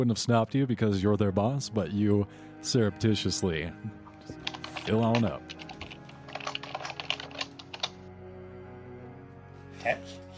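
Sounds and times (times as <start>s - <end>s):
speech: 0.0s - 5.6s
fingers typing on a computer keyboard: 4.4s - 7.9s.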